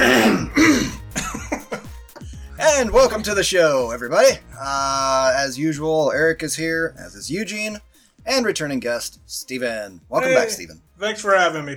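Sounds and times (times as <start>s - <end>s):
people clearing their throats: 0.0s - 1.3s
people coughing: 0.0s - 1.8s
speech: 2.8s - 11.7s.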